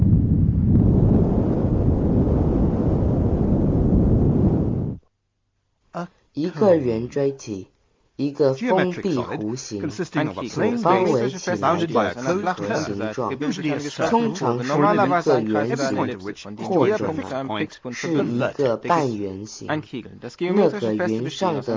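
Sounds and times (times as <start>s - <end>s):
wind rushing past a cone: 0.0s - 5.0s
people talking: 6.0s - 21.7s.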